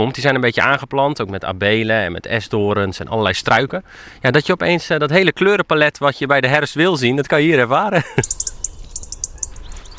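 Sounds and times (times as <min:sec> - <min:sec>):
speech: 0:00.0 - 0:08.4
laughter: 0:07.9 - 0:08.3
European robin singing in autumn: 0:08.0 - 0:09.9.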